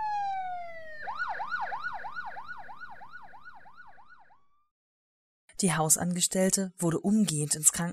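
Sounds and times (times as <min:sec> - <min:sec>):
ambulance siren with falling tone and fast rhythmic wail: 0:00.0 - 0:04.3
speech: 0:05.6 - 0:07.9.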